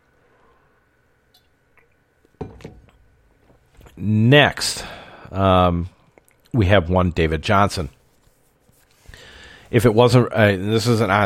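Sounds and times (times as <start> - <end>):
faint room hiss: 0.0 - 11.2
glass clinking: 2.4 - 2.9
speech: 4.0 - 8.0, 9.7 - 11.2.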